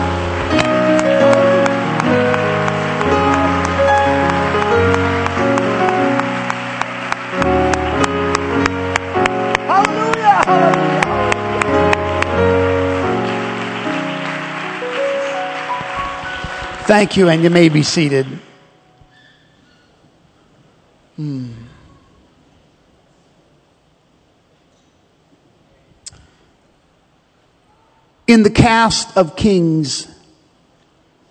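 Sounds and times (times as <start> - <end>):
audience clapping hands: 0.0 - 18.6
sustained keyboard or organ music: 0.0 - 19.1
speech: 17.0 - 18.5, 28.4 - 30.1.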